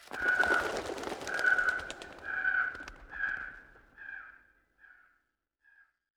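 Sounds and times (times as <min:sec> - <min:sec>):
bird calling: 0:00.1 - 0:04.3.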